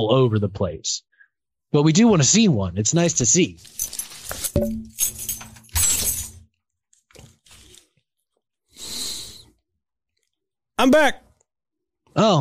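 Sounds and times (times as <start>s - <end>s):
speech: 0.0s - 1.1s, 1.7s - 4.0s, 4.6s - 5.2s, 10.8s - 11.2s, 12.2s - 12.4s
rustling: 3.6s - 6.2s
keys jingling and clinking as they are taken off and handled: 3.6s - 6.4s.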